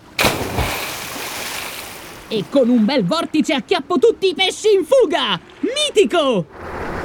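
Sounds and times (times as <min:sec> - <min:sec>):
loud splash of something plunging into water: 0:00.2 - 0:02.3
speech: 0:02.3 - 0:06.7.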